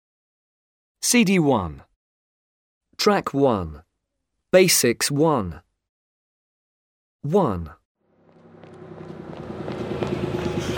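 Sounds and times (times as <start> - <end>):
speech: 1.0 - 1.9, 3.0 - 3.8, 4.5 - 5.6, 7.2 - 7.8
bus engine rumbling and revving as it pulls away: 8.2 - 10.7.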